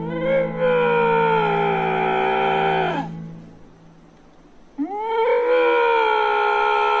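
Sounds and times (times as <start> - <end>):
lynx mating call wailing: 0.0 - 3.3, 4.8 - 6.9.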